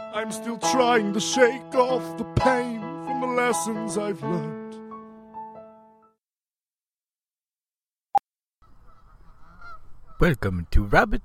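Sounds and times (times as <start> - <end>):
speech: 0.2 - 4.6, 10.2 - 11.2
goose honking: 8.7 - 10.3.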